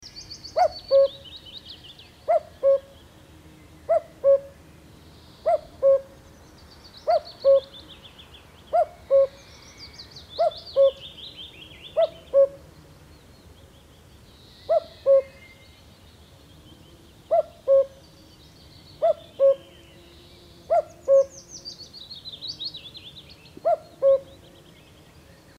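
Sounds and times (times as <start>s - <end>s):
common cuckoo Cuculus canorus calling: 0.5s - 1.3s, 2.2s - 3.0s, 3.9s - 4.6s, 5.4s - 6.1s, 7.0s - 7.8s, 8.7s - 9.6s, 10.4s - 11.2s, 11.9s - 12.6s, 14.6s - 15.6s, 17.3s - 18.0s, 19.0s - 19.7s, 20.7s - 21.5s, 23.6s - 24.5s.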